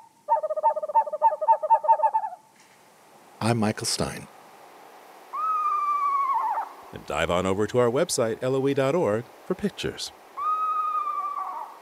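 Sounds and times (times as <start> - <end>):
screech owl giving a quavering run of hooting notes: 0.0 - 2.4, 5.3 - 6.8, 10.4 - 11.8
speech: 3.4 - 4.3, 7.1 - 10.2.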